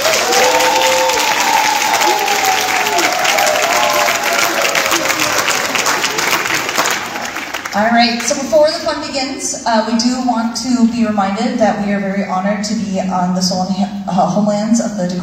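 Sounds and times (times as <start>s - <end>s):
audience applause: 0.0s - 7.8s
people cheering: 0.0s - 7.8s
speech: 8.0s - 15.2s.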